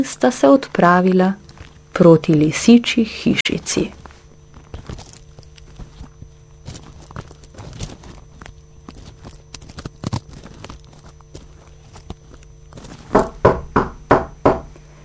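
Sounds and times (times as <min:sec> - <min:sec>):
speech: 0:00.0 - 0:04.0
shuffling footsteps approaching: 0:00.8 - 0:13.9
firm knocks on a wooden door: 0:13.1 - 0:14.7.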